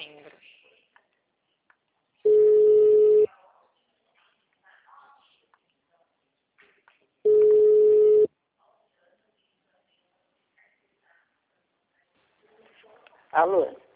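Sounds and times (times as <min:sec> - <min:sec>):
mobile phone ringing tone: 0:02.3 - 0:03.3, 0:07.3 - 0:08.3.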